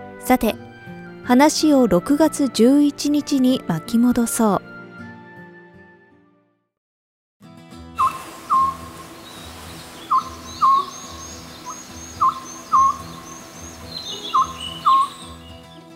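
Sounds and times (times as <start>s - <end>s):
speech: 0.3s - 4.6s
low constant drone: 8.0s - 15.6s
unusual bird calling in two-note phrases: 8.0s - 15.7s.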